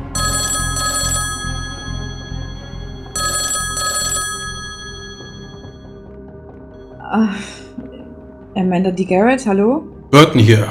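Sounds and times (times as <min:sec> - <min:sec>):
telephone ringing in double bursts: 0:00.0 - 0:06.0
speech: 0:07.1 - 0:07.6, 0:08.6 - 0:10.7.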